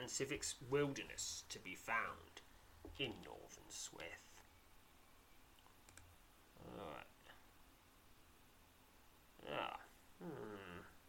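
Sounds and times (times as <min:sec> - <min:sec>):
speech: 0:00.0 - 0:04.3, 0:06.6 - 0:07.1, 0:09.4 - 0:10.9
computer mouse clicking a link: 0:05.6 - 0:06.1.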